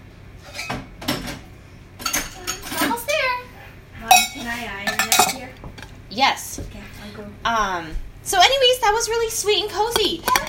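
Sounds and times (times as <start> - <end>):
low hum: 0.0 - 10.4
dishes clattering and clinking while being cleaned: 0.4 - 3.1, 4.1 - 6.0, 9.9 - 10.4
speech: 4.4 - 10.4.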